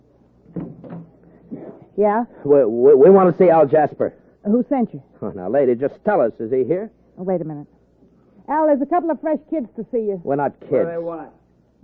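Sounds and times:
wooden knock on the door of a flat: 0.5 - 1.7
speech: 2.0 - 7.8, 8.5 - 11.8.

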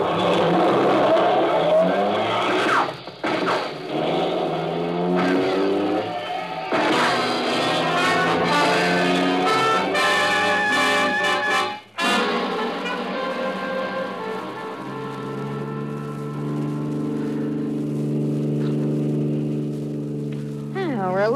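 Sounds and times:
car engine revving hard as the vehicle speeds off: 0.0 - 21.3
tire noise: 0.0 - 21.3.

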